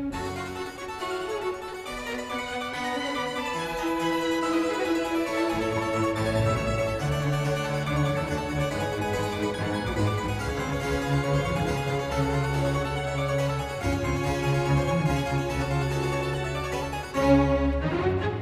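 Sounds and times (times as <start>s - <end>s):
harpsichord: 0.1s - 18.4s.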